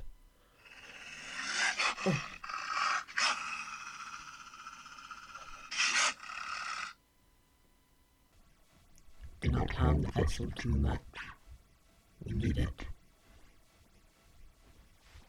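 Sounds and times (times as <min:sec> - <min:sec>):
wolf growling and panting: 0:00.7 - 0:06.3
speech: 0:02.0 - 0:02.3, 0:09.6 - 0:11.3, 0:12.3 - 0:12.9.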